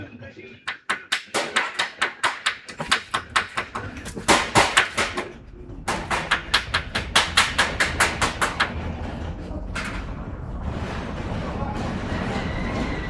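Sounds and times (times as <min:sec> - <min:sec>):
hammer striking metal: 0:00.7 - 0:08.9
low lingering rumble: 0:06.8 - 0:13.0.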